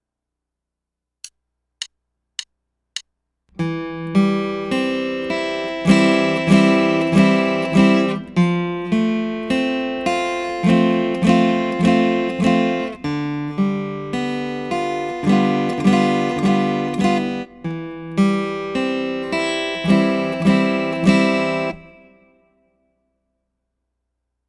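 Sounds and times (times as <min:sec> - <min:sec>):
four-string instrument chords: 0:03.6 - 0:22.5.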